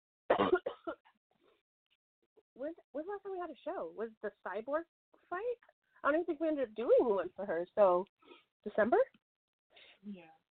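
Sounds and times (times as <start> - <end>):
person coughing: 0.3 - 1.0
speech: 0.4 - 0.6, 2.6 - 9.2, 10.0 - 10.4.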